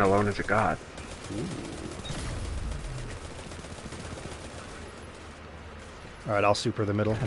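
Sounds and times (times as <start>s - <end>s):
speech: 0.0s - 2.0s, 6.3s - 7.2s
video game scout rifle gunfire bursts: 0.0s - 6.0s
dense noisy video game battle soundscape with heavy low rumble: 0.0s - 7.2s.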